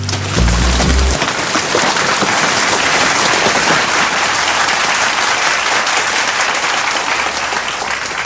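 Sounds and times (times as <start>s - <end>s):
brief low rumble: 0.0s - 1.2s
steady rain pattering: 0.0s - 8.2s.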